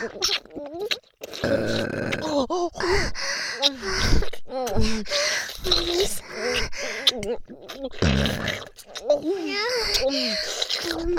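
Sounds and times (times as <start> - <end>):
breathy gasps and grunts: 0.0 - 0.2, 1.2 - 11.1
speech: 0.0 - 0.6
person burping: 1.2 - 2.9, 7.9 - 8.8.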